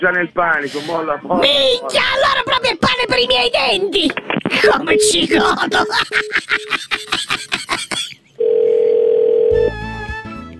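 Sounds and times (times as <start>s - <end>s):
speech: 0.0s - 7.4s
laughter: 4.7s - 8.3s
telephone dial tone while placing a call: 8.4s - 9.7s.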